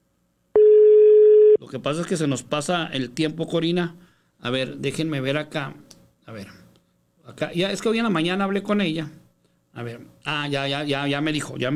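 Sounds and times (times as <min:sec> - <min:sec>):
steady mid-pitched telephone tone on an unanswered call: 0:00.6 - 0:01.6
speech: 0:01.7 - 0:06.6, 0:07.3 - 0:09.2, 0:09.8 - 0:11.7.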